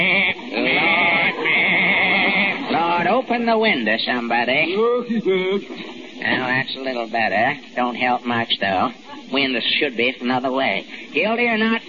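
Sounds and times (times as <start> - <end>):
goat bleating in a courtroom: 0.0 - 2.8
laughter: 0.0 - 3.4, 4.6 - 6.6
speech: 3.2 - 11.8.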